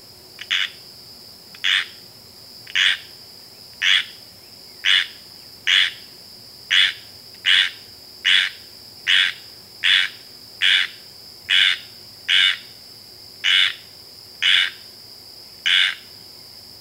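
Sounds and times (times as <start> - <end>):
steady high insect drone: 0.0 - 16.7
squirrel tree frog raspy rain call: 0.4 - 0.8, 1.6 - 2.0, 2.7 - 3.1, 3.8 - 6.1, 6.7 - 12.8, 13.4 - 14.9, 15.6 - 16.2.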